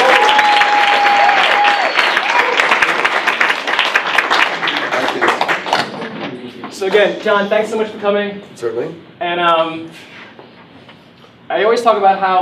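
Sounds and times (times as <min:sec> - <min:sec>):
audience applauding with dense clapping: 0:00.0 - 0:06.0
speech: 0:07.0 - 0:10.1, 0:11.5 - 0:12.4.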